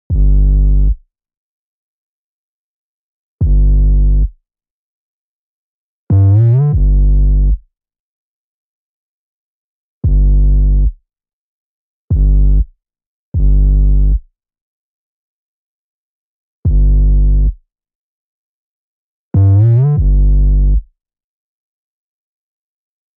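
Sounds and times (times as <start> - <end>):
808 bass without saturation: 0.1 - 1.0, 3.4 - 4.3, 6.1 - 7.6, 10.0 - 11.0, 12.1 - 12.6, 13.4 - 14.2, 16.7 - 17.6, 19.4 - 20.8.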